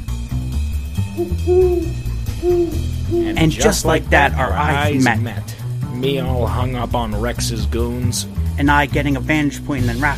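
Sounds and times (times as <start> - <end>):
low rumbling background: 0.0 - 7.9
person imitating owl hoots: 1.2 - 4.0
speech: 1.2 - 10.1.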